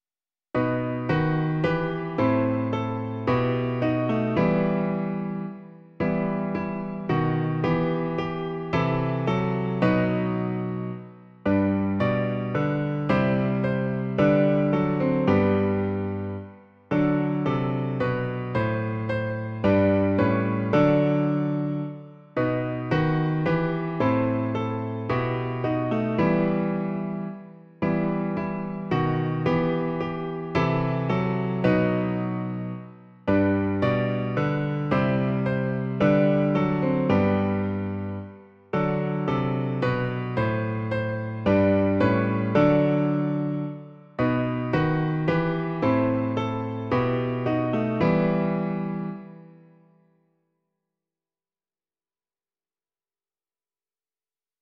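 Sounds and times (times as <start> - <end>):
piano version of a piece: 0.5 - 50.2.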